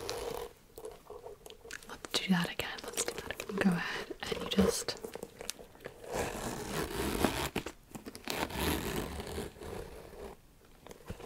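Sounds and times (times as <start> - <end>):
leather-tabbed handbag zipper opening and closing: 0.0 - 1.3, 4.3 - 11.2
speech: 2.3 - 2.7, 3.5 - 5.0.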